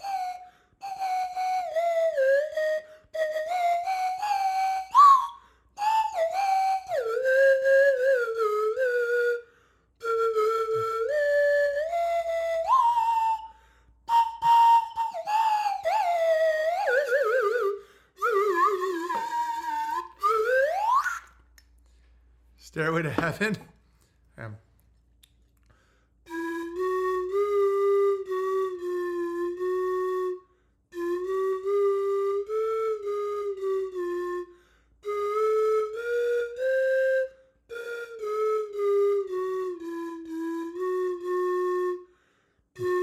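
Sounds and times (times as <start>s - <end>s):
slide whistle playing a wavering tune: 0.0s - 21.7s, 25.8s - 43.0s
speech: 22.8s - 23.7s.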